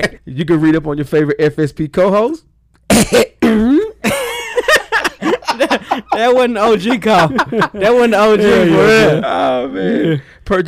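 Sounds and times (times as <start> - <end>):
speech: 0.0 - 3.6, 5.6 - 10.6
loud exaggerated theatrical coughs: 2.9 - 4.4
laughter: 4.0 - 9.2.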